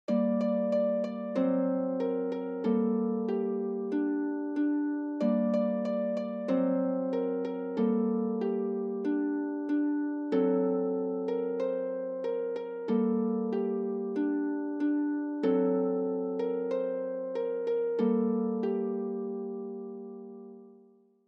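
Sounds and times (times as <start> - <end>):
birch tree harp: 0.1 - 21.0.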